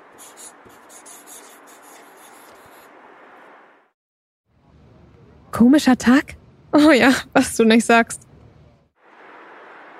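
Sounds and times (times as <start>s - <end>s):
pen scratching on a slip of paper while writing by hand: 0.0s - 3.0s
speech: 0.2s - 0.8s, 5.6s - 8.2s.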